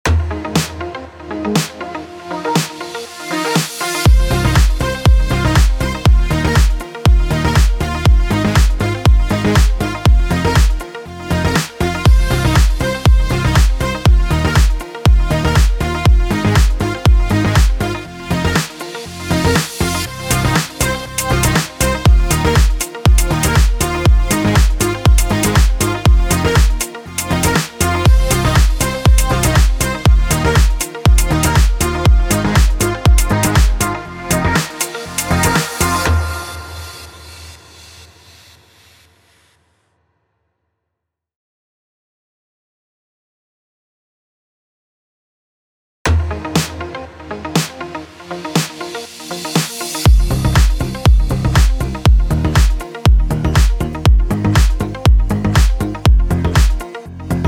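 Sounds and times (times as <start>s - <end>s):
pop music bed in F minor at 120 BPM: 0.1s - 38.0s, 46.1s - 57.4s.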